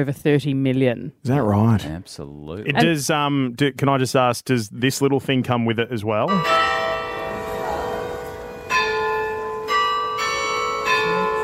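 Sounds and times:
speech: 0.0 - 6.9
striking clock bell chimes: 6.3 - 11.4.

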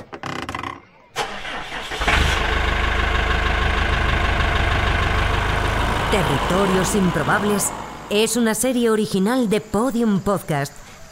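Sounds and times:
large diesel tractor engine cranking and idling: 1.1 - 8.8
speech: 6.1 - 11.0.

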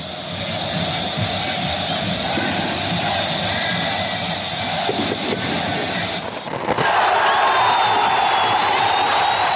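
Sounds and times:
huge stadium crowd cheering a goal: 0.0 - 9.5.

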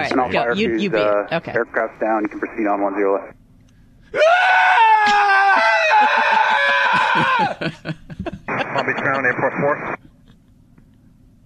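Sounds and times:
laughter: 0.0 - 1.2, 5.0 - 10.4
speech: 0.0 - 3.4, 4.1 - 5.3, 7.2 - 10.1
person screaming in mock panic: 4.1 - 7.7.

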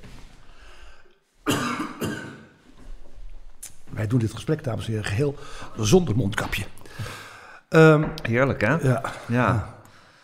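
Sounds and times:
person coughing: 1.4 - 2.6
speech: 4.0 - 9.7.

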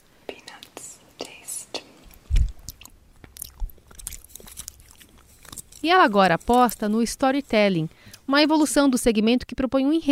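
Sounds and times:
breathy mouth sounds: 0.2 - 5.7
chewing colorful hard candies: 1.7 - 7.1
speech: 5.8 - 10.1.

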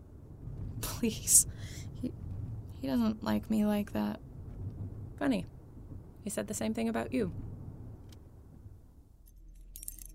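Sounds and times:
low steady rumble: 0.0 - 10.1
speech: 1.0 - 2.2, 2.8 - 4.3, 5.2 - 5.6, 6.2 - 7.5
keys jingling at a door lock: 9.2 - 10.1.

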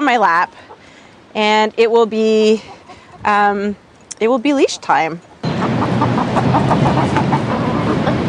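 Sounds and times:
constant hiss: 0.0 - 7.4
speech: 0.1 - 0.6, 1.3 - 5.3
chicken clucking: 5.4 - 8.2.

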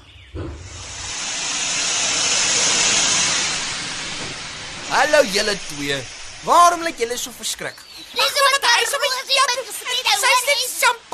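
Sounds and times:
soft thump: 0.3 - 0.9
small train arriving hissing steam: 0.7 - 8.8
speech: 5.0 - 11.1.

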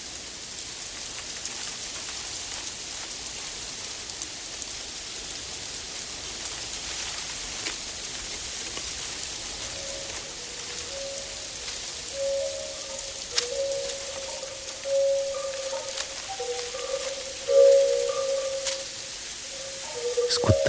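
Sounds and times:
leaves rustling in a gentle breeze: 0.0 - 20.6
faint wavering flute-like tones from a distance: 9.0 - 20.6.

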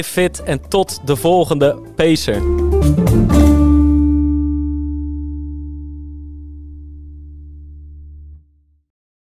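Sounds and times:
speech: 0.0 - 3.5
loud low electronic time-up buzzer: 3.6 - 8.6.

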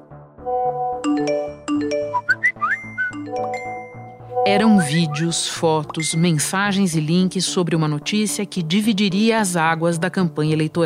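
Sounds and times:
speech: 0.5 - 1.6, 4.5 - 10.8
mobile phone notification chimes, dings and whistle-like blips: 1.0 - 6.6.

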